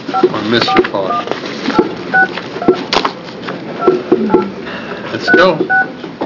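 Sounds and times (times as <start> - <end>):
speech: 0.1 - 1.9, 5.4 - 5.8
touch-tone beeps of a phone number being keyed in: 0.1 - 2.8, 3.8 - 4.5, 5.2 - 5.9.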